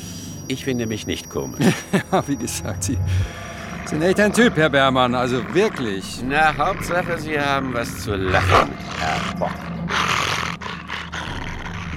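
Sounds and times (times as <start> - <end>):
speech: 0.5 - 9.8
laughter: 1.6 - 2.5
muzzled dog growling low and rough: 3.2 - 11.9.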